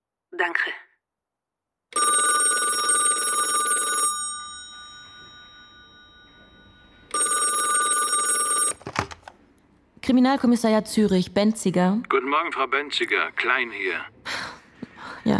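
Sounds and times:
speech: 0.4 - 0.8, 1.9 - 2.3, 10.1 - 14.2
electronic telephone ringing: 1.9 - 8.9.

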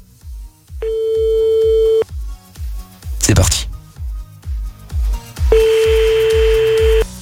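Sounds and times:
steady mid-pitched electronic telephone tone: 0.8 - 2.0, 5.5 - 7.0
speech: 3.3 - 3.7.

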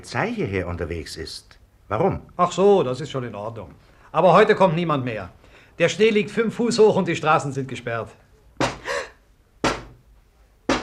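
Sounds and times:
speech: 0.0 - 8.2
knocking on a window in a snowed-in house: 8.6 - 8.8, 9.6 - 10.0, 10.7 - 10.8.

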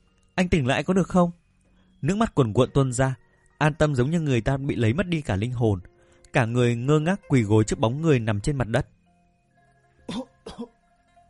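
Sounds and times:
speech: 0.4 - 1.4, 2.0 - 9.0, 10.1 - 10.8
dry cough: 10.1 - 10.7.

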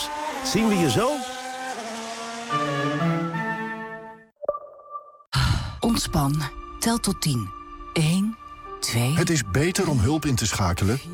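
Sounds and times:
race car tires squealing: 0.0 - 4.1
race car engine whine at Zandvoort: 0.0 - 4.2
speech: 0.4 - 1.3, 6.0 - 11.1.

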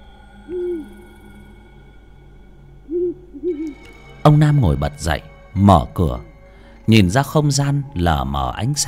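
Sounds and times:
scops owl hooting mournfully over a house roof: 0.0 - 1.6, 2.8 - 4.0
faint steady hum: 0.0 - 8.8
speech: 3.5 - 6.3, 6.9 - 8.8.

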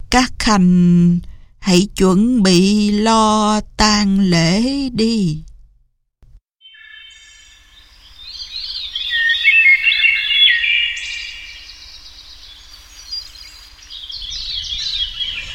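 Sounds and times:
speech: 0.2 - 5.5
nightingale singing by a window: 6.6 - 15.5.

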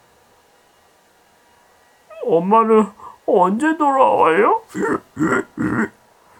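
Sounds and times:
human voice imitating pigs squealing: 2.1 - 5.9
speech: 2.3 - 6.0.

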